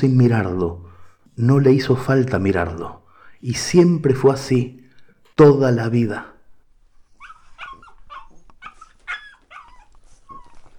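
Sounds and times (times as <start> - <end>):
speech: 0.0 - 4.8, 5.4 - 6.3
small brown long-eared terrier puppy yapping and whimpering: 7.1 - 10.7.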